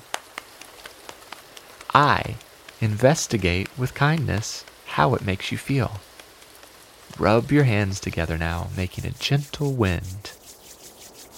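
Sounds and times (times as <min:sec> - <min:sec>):
faint hiss: 0:00.0 - 0:11.3
soft tapping on lap mimicking light rain: 0:00.1 - 0:04.8, 0:06.0 - 0:07.2
speech: 0:02.0 - 0:06.1, 0:07.1 - 0:10.4.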